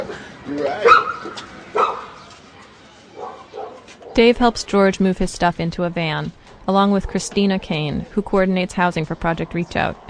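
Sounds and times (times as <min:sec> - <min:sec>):
laughter: 0:00.0 - 0:00.8
speech: 0:00.5 - 0:01.6, 0:04.2 - 0:10.0
dog barking: 0:00.8 - 0:02.2, 0:03.2 - 0:04.2.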